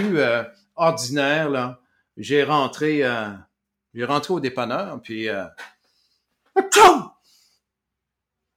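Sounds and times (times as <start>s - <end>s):
speech: 0.0s - 5.7s, 6.6s - 7.1s
voice imitating a convenience store counter clerk sneezing: 6.6s - 7.2s.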